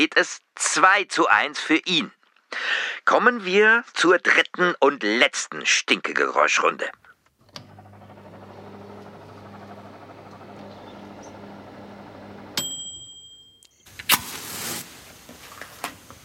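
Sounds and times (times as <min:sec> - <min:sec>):
speech: 0:00.0 - 0:07.0
microwave oven humming: 0:07.6 - 0:12.9
short sharp microwave oven beep: 0:08.6 - 0:13.8.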